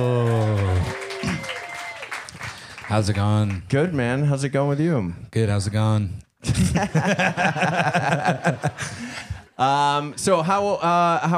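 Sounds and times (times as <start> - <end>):
small group applauding welcoming a guest: 0.0 - 3.6
speech: 2.9 - 11.3
laughter: 6.4 - 9.6.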